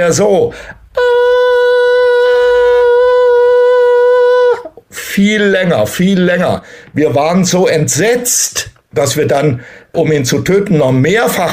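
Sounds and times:
speech: 0.0 - 1.2, 5.2 - 11.5
person imitating the scream of a wounded hare: 0.9 - 4.8.

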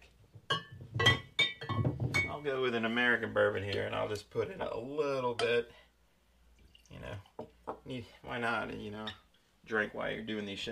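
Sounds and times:
heavy Glencairn whisky glass clinking against a hard surface: 0.5 - 2.4
speech: 2.4 - 5.8, 6.9 - 10.7.

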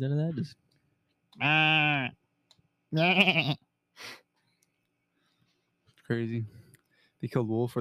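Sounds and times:
speech: 0.0 - 0.7, 1.4 - 2.2, 2.9 - 4.2, 6.1 - 6.6, 7.2 - 7.7
sheep bleating: 1.4 - 2.2, 2.9 - 3.6.

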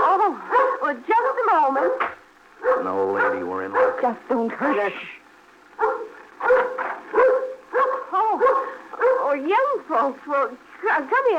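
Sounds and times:
dog barking with a whiny yelping edge: 0.5 - 4.2, 5.8 - 9.4
speech: 4.0 - 5.2, 9.9 - 11.3.

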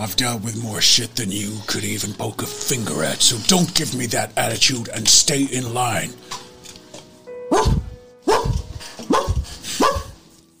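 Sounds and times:
speech: 0.0 - 6.4
dog barking behind a door: 7.5 - 10.2.

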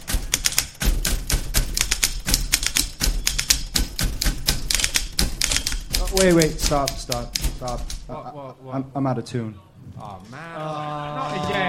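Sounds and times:
several old-fashioned typewriters being typed: 0.0 - 8.1
speech: 6.2 - 11.6.

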